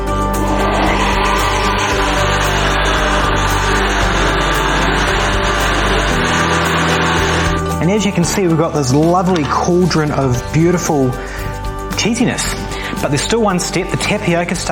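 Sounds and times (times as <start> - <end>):
blender puréeing thick cheese sauce mixture: 0.0 - 7.7
speech: 8.0 - 11.4, 12.0 - 14.7.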